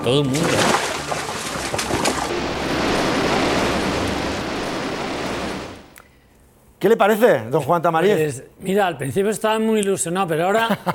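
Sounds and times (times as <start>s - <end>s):
speech: 0.0s - 0.8s, 6.8s - 10.9s
rushing water waves breaking: 0.0s - 6.2s.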